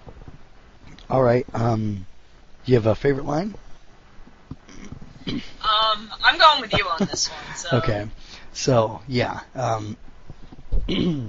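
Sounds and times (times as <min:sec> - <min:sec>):
speech: 0:01.1 - 0:03.6, 0:05.3 - 0:10.1, 0:10.9 - 0:11.2
person clearing throat: 0:04.7 - 0:05.5, 0:10.9 - 0:11.2.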